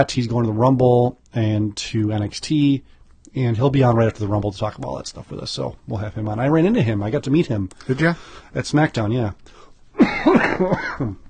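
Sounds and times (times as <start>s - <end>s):
speech: 0.0s - 11.2s
person coughing: 10.0s - 11.2s.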